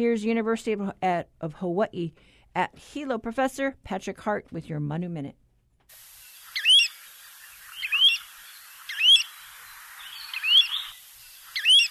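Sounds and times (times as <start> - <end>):
speech: 0.0 - 6.0
faint steady hiss: 5.9 - 11.8
Pacific golden plover giving whistled rising notes: 6.5 - 11.8.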